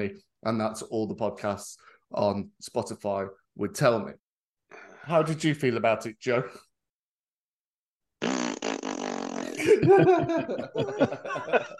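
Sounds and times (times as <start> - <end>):
speech: 0.0 - 6.7, 9.6 - 11.7
long loud buzzy fart: 8.2 - 9.6
laughter: 9.6 - 11.7.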